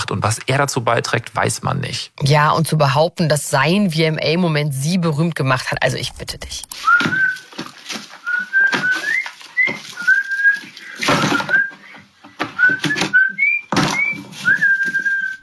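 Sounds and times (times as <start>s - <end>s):
speech: 0.1s - 8.0s
person whistling a short bouncy tune: 6.8s - 7.4s, 8.2s - 12.0s, 12.6s - 15.4s
thumps: 6.8s - 15.4s.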